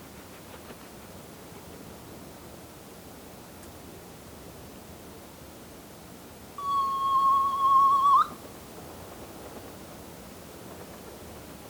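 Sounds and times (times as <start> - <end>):
low background noise: 0.0 - 11.6
Soft-plumaged petrel Pterodroma mollis wavering whistle: 6.6 - 8.4.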